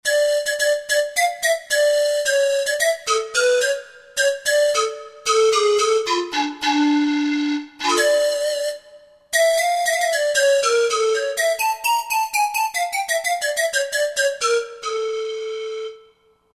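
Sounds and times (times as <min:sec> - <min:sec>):
synth pan flute on Roland JV-2080: 0:00.0 - 0:16.3.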